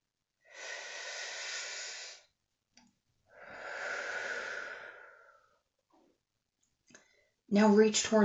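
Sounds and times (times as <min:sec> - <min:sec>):
deep breath in and long exhale: 0:00.5 - 0:02.3, 0:03.3 - 0:05.6
speech: 0:07.5 - 0:08.2.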